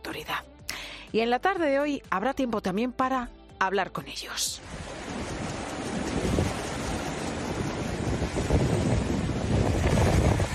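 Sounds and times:
speech: 0:01.1 - 0:05.0
gusting wind over the water: 0:04.6 - 0:10.5
sea waves crashing against rocks: 0:04.6 - 0:10.5.

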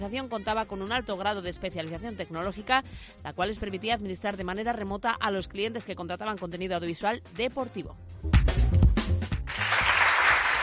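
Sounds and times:
speech: 0:00.0 - 0:08.8
applause: 0:09.3 - 0:10.6.

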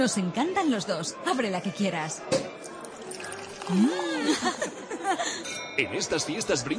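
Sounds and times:
speech: 0:00.0 - 0:02.5, 0:03.7 - 0:06.7
Yera sparkling wine pouring from a bottle into a glass: 0:02.5 - 0:04.4
laughter: 0:03.8 - 0:05.5.

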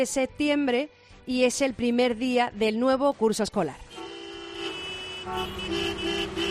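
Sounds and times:
speech: 0:00.0 - 0:03.8, 0:05.2 - 0:06.5
busy street rumble: 0:03.7 - 0:06.5
car horns honking in a morning traffic jam in Málaga: 0:03.9 - 0:06.5.

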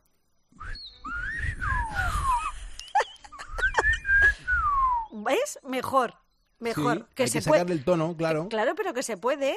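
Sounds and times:
person whistling a phrase in Silbo Gomero style: 0:00.6 - 0:03.0, 0:03.6 - 0:05.2
speech: 0:05.3 - 0:09.5.

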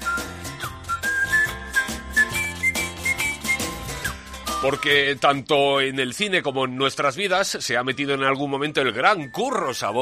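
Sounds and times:
person whistling a clear lilting melody: 0:00.0 - 0:05.1
instrumental backing with bass and rhythmic accompaniment: 0:00.0 - 0:10.0
speech: 0:04.6 - 0:10.0.

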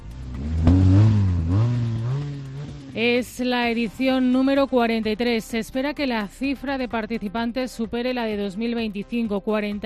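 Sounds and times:
motorcycle engine roaring and revving: 0:00.0 - 0:03.7
speech: 0:03.0 - 0:09.8.

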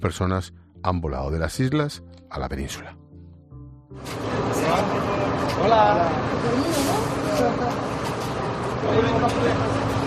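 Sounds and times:
speech: 0:00.0 - 0:03.0, 0:03.9 - 0:07.8, 0:08.8 - 0:09.8
crowd chattering as they step off a bus: 0:04.2 - 0:10.0.

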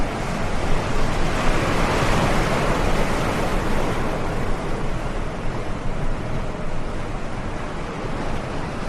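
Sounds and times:
gusting wind buffeting the microphone: 0:00.0 - 0:08.8
heavy stormy ocean surf roaring: 0:00.0 - 0:08.8.

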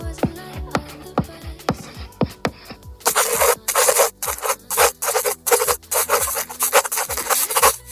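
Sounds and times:
chalk dragged across a blackboard in a medicine research methodology class: 0:01.7 - 0:07.9
pen scribbling on paper: 0:01.7 - 0:07.9.

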